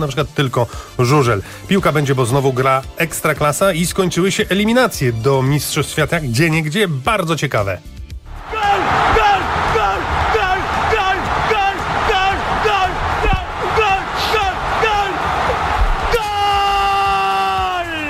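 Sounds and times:
speech: 0.0s - 8.0s
football fans cheering after the decisive goal in World Cup qualifying: 8.3s - 18.0s
loud crowd chanting rhythmically: 8.4s - 16.3s.

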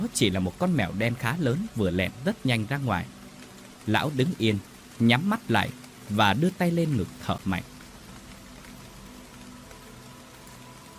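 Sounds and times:
wind and rain blowing into a house through a burst-open door: 0.0s - 10.9s
speech: 0.1s - 3.2s, 3.9s - 7.7s.

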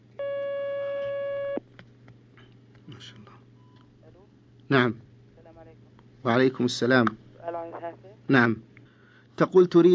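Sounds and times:
telephone line tone as a caller is connected: 0.2s - 1.6s
speech: 2.9s - 3.4s, 4.7s - 5.0s, 6.2s - 7.2s, 8.3s - 8.7s, 9.4s - 9.9s.

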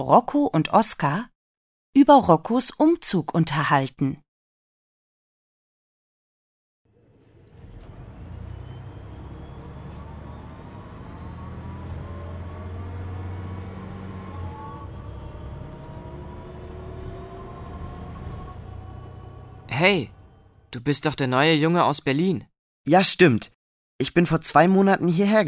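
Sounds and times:
speech: 0.0s - 1.3s, 2.0s - 4.2s, 19.8s - 25.4s
moving bus engine rumble: 6.9s - 21.7s
road noise inside a moving bus: 6.9s - 21.8s.

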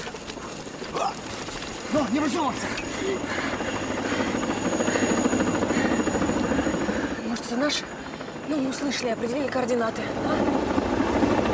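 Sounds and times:
helicopter rotor flying over a forest: 0.0s - 11.5s
speech: 1.9s - 3.6s, 7.6s - 10.6s.

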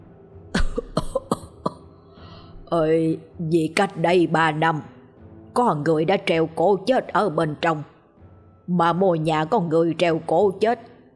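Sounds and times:
elderly man coughing in a long fit: 0.6s - 1.9s
speech: 2.7s - 4.9s, 5.6s - 7.9s, 8.7s - 10.9s.

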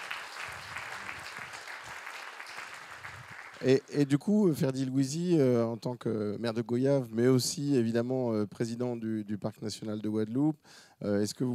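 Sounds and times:
audience applause at a conference on biodiversity and local authorities: 0.0s - 3.9s
speech: 3.6s - 11.5s.

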